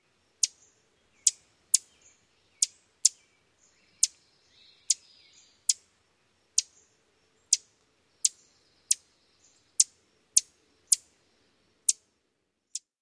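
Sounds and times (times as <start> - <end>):
Ovenbird chewk calls: 0.4 - 5.9, 6.6 - 11.1.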